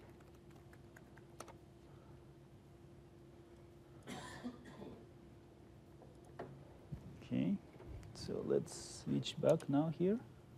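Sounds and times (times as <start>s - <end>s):
quiet typing on a computer keyboard during a live software demo: 0.0s - 1.6s
faint steady hum: 0.0s - 10.5s
speech: 7.3s - 7.7s, 8.3s - 10.3s.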